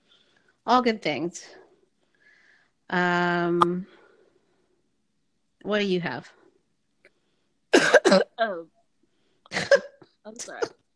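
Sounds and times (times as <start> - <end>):
speech: 0.7 - 1.6, 2.9 - 4.0, 5.6 - 6.4, 8.1 - 8.8, 9.6 - 10.8
person coughing: 7.7 - 8.4, 9.5 - 10.8.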